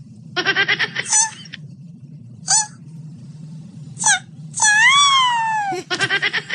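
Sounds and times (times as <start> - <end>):
low hum: 0.0 - 6.5
person imitating a turtle with high squeaky wailing: 4.0 - 6.0.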